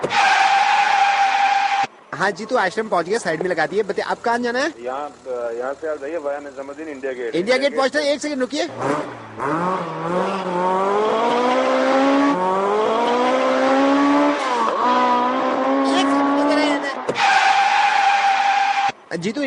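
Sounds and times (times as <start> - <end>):
car tires screeching and skidding: 0.0 - 4.3, 8.5 - 19.1
car engine roaring through gear shifts: 0.0 - 19.1
speech: 2.2 - 11.4, 19.2 - 19.4.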